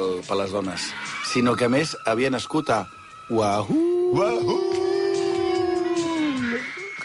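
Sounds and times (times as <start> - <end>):
speech: 0.2 - 4.8
person imitating a wolf howl: 3.7 - 6.8.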